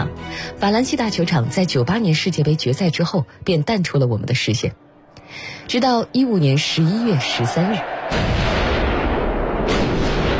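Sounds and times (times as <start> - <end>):
speech: 0.5 - 8.4
explosions outside a large football stadium: 8.1 - 10.3.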